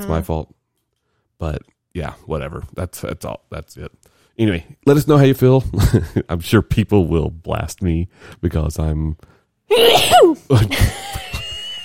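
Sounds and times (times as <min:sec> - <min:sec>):
speech: 0:00.0 - 0:00.6, 0:01.4 - 0:11.2
person sneezing: 0:09.7 - 0:10.4.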